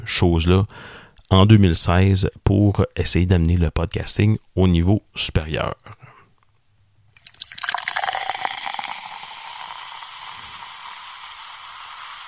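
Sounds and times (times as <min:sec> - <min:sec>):
speech: 0:00.1 - 0:06.0
beer being poured: 0:07.2 - 0:12.2.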